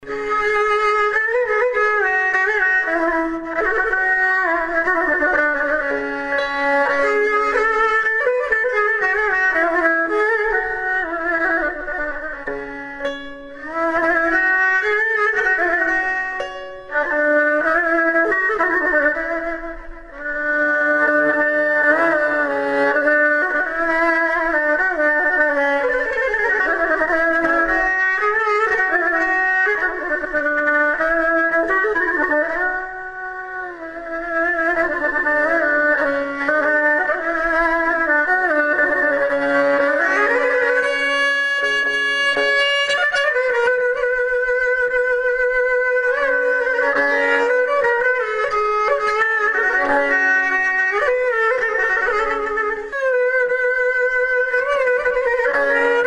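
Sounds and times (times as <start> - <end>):
fiddle: 0.0 - 56.0
kamancheh: 0.0 - 56.0.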